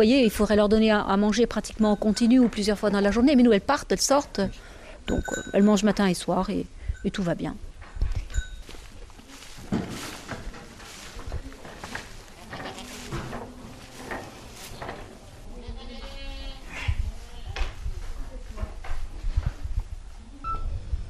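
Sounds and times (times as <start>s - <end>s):
speech: 0.0s - 7.7s
steady noise: 0.0s - 21.0s
goats bleating in a milking parlour: 15.5s - 17.5s.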